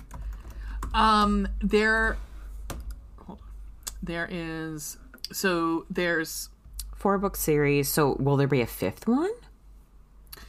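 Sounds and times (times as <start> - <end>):
typing on a computer keyboard: 0.0 - 1.0
low hum: 0.0 - 10.4
speech: 1.0 - 2.3, 4.0 - 9.4.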